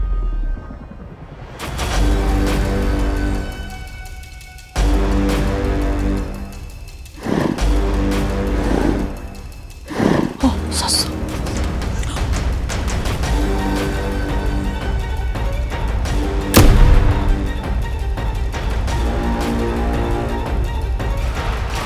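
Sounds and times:
steady tense musical drone: 0.0s - 21.8s
single sharp gunshot with a short ringing tail: 16.6s - 17.8s.

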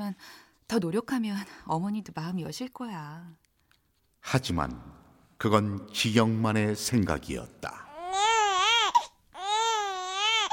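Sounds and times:
speech: 0.1s - 3.4s, 4.2s - 7.9s
baby crying: 7.9s - 10.5s.

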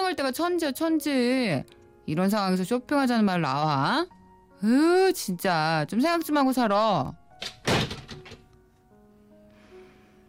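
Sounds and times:
speech: 0.1s - 7.5s
front door slammed shut by a man leaving the house: 7.4s - 8.5s.

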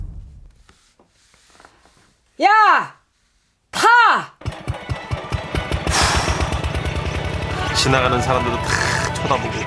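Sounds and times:
speech: 2.4s - 3.0s, 3.7s - 4.6s, 7.8s - 9.6s
two-wheeled power tiller engine chugging in the countryside: 4.4s - 9.6s.

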